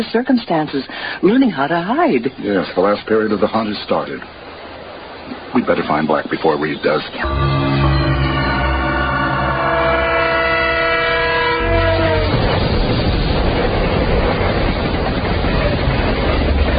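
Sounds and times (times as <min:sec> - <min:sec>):
speech: 0:00.0 - 0:04.4, 0:05.5 - 0:07.8
elevated train horn blast of steady tones: 0:07.2 - 0:13.0
elevated train rumbling clatter on overhead tracks: 0:08.6 - 0:16.7.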